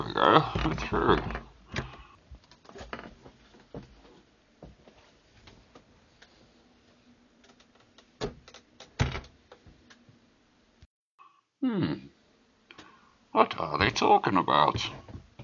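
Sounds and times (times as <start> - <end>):
speech: 0.0 - 1.4, 14.0 - 15.0
door creaking squeak: 0.0 - 3.2, 7.5 - 9.4.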